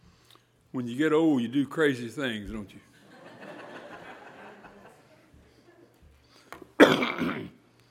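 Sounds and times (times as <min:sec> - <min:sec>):
speech: 0:00.7 - 0:02.9
laughter: 0:02.9 - 0:06.1
person coughing: 0:06.8 - 0:07.6.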